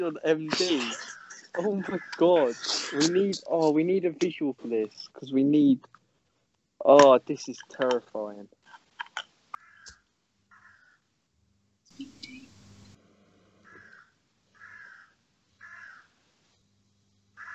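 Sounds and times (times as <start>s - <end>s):
laughter: 0.0s - 4.9s
speech: 0.0s - 6.0s, 6.8s - 8.6s
parrot squawking loudly and harshly: 0.6s - 3.2s.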